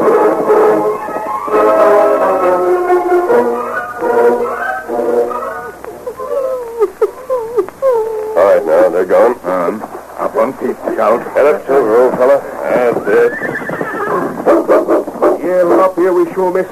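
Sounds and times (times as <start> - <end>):
voices talking: 0.4 - 16.7
horse neighing: 0.7 - 6.7, 10.8 - 15.4
laughter: 3.5 - 13.4.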